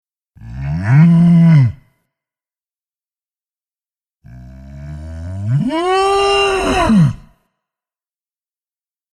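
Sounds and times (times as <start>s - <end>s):
cow mooing: 0.4s - 1.8s, 4.3s - 7.3s.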